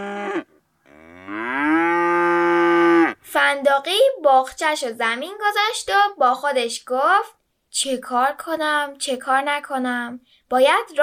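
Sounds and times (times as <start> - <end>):
large cow mooing after giving birth to a calf: 0.0 - 3.2
speech: 3.5 - 11.0.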